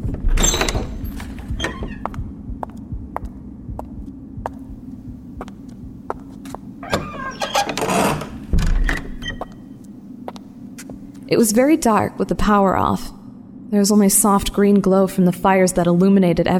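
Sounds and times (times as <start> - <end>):
library door flung open with a loud rattling burst: 0.0 - 2.1, 6.8 - 9.2
steady low throbbing hum: 0.0 - 16.0
speech: 11.3 - 16.5.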